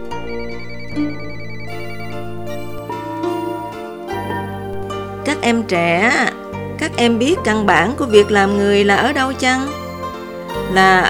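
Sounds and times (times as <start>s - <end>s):
cheerful electronic phone ringtone melody: 0.0s - 5.7s, 8.1s - 11.0s
speech: 1.0s - 1.2s, 5.4s - 9.8s, 10.7s - 11.0s.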